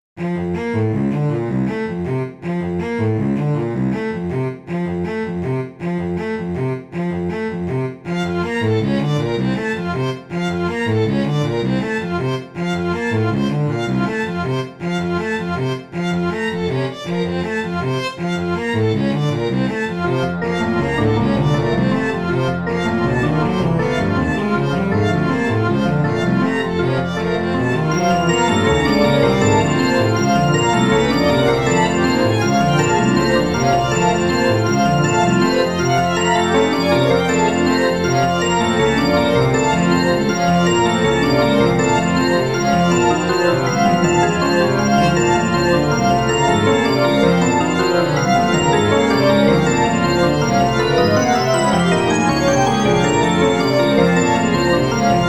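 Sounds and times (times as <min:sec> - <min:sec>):
cello: 0:00.2 - 0:55.2
violin: 0:00.2 - 0:55.2.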